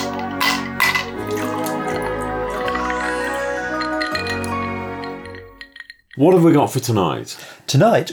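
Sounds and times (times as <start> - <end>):
gin and tonic trickling and dripping as it is poured and mixed: 0.0 - 6.3
glasses clinking: 0.0 - 6.7
speech: 6.2 - 8.1.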